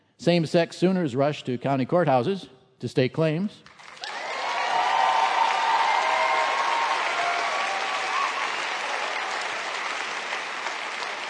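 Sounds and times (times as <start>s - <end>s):
speech: 0.2s - 3.8s
audience applause: 3.8s - 11.2s
faint scattered cheers: 4.0s - 10.1s.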